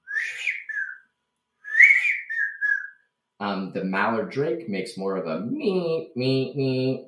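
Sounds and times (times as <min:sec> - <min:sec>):
person imitating a widgeon duck whistle: 0:00.0 - 0:01.0, 0:01.6 - 0:03.0
speech: 0:03.4 - 0:07.0.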